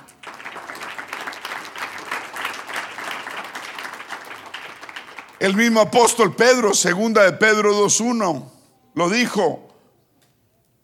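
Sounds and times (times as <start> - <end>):
church audience applause during a sermon: 0.0 - 6.0
speech: 5.4 - 9.7.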